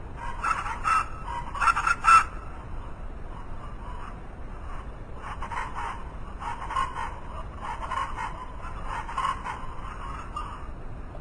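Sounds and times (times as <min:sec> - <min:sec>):
low background hiss: 0:00.0 - 0:11.1
chachalaca calls: 0:00.2 - 0:02.6, 0:03.4 - 0:10.7.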